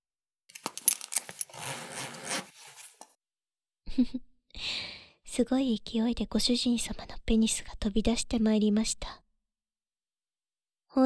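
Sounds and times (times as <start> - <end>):
short soft rustles: 0.5 - 3.1
zipper being pulled down: 0.5 - 3.1
speech: 4.0 - 9.2.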